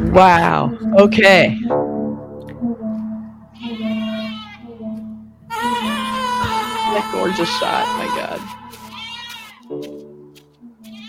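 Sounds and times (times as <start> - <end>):
speech: 0.1 - 1.8, 7.0 - 8.5
goat bleating in a long wavering nasal cry: 3.6 - 4.8, 5.5 - 9.7, 10.8 - 11.0.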